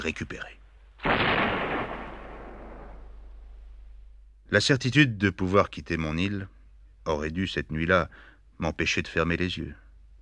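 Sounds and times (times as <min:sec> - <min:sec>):
speech: 0:00.0 - 0:00.6, 0:04.5 - 0:09.8
heavy cannon shot booming: 0:01.0 - 0:03.7.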